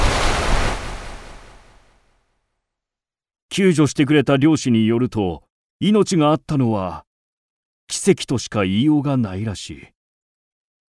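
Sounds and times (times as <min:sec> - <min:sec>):
roaring rush of churning seawater in a sea whirlpool: 0:00.0 - 0:01.7
speech: 0:03.5 - 0:07.1, 0:07.9 - 0:10.0.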